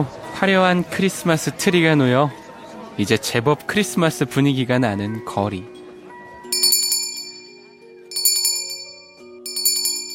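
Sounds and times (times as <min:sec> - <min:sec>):
speech: 0:00.0 - 0:02.4, 0:03.0 - 0:05.8
Salvation Army charity handbell ringing on a street in December: 0:06.5 - 0:10.1.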